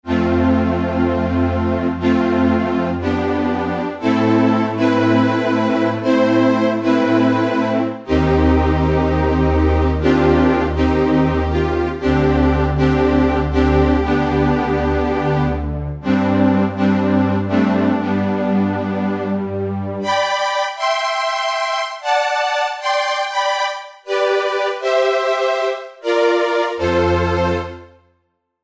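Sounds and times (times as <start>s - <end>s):
synthesizer: 0.0s - 28.1s.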